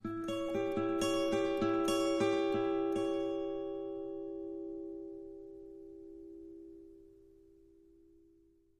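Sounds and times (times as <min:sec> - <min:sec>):
acoustic guitar high tone: 0:00.0 - 0:08.7.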